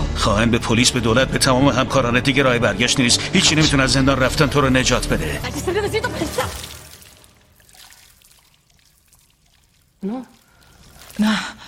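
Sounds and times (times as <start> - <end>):
speech: 0.2 - 6.6, 10.0 - 10.4, 11.2 - 11.6
water gushing and splashing as a woman's water breaks: 5.4 - 11.6
person vocalizing: 10.0 - 10.4.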